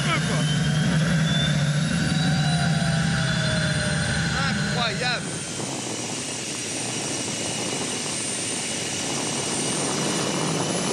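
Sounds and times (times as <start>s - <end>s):
vehicle engine roar while accelerating: 0.0s - 5.9s
turbine whine spooling up while accelerating: 0.0s - 10.9s.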